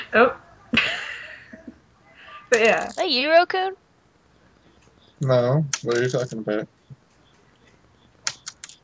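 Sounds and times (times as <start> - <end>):
speech: 0.1 - 0.8, 2.6 - 3.8, 5.2 - 6.8
laughter: 0.7 - 2.6, 5.2 - 6.6
crisp computer keyboard keystrokes: 5.7 - 6.4, 7.1 - 8.8.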